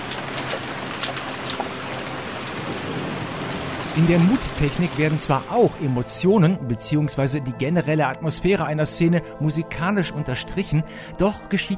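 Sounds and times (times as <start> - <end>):
steady rain shower hissing: 0.0 - 6.1
speech: 4.0 - 11.7.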